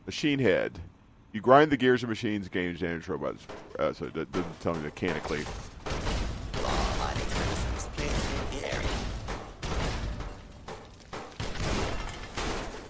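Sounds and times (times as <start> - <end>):
speech: 0.1 - 5.7
video game gunfire: 4.3 - 12.8.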